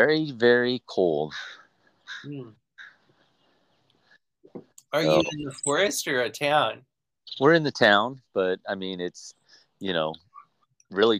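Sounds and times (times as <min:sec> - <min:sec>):
speech: 0:00.0 - 0:01.6, 0:02.2 - 0:02.6, 0:04.6 - 0:10.2, 0:10.9 - 0:11.1
faint outdoor noise: 0:00.0 - 0:11.1
crow cawing: 0:01.3 - 0:03.0.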